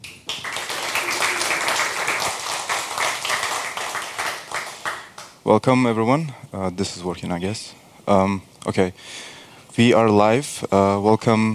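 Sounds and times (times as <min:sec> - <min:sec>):
audience applause welcoming a presenter: 0:00.0 - 0:05.3
speech: 0:05.5 - 0:11.5.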